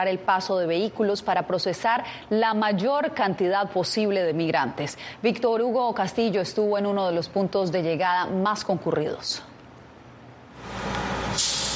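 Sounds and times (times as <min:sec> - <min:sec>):
speech: 0:00.0 - 0:09.5
bus engine drone in downtown McAllen: 0:10.6 - 0:11.7
bus air brakes hissing in downtown McAllen: 0:10.8 - 0:11.7.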